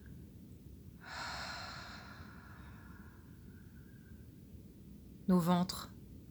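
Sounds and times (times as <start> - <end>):
constant low rumble: 0.0 - 6.2
deep airy belly breath inhaling and exhaling: 1.0 - 4.2
speech: 5.3 - 6.0.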